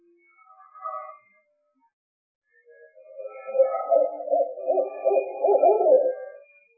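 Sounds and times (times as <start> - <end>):
owl hooting: 3.5 - 6.4.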